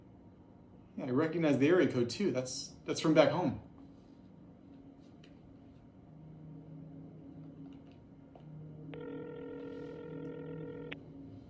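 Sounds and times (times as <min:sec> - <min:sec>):
speech: 0:01.0 - 0:03.7
electronic telephone tone: 0:08.7 - 0:11.3.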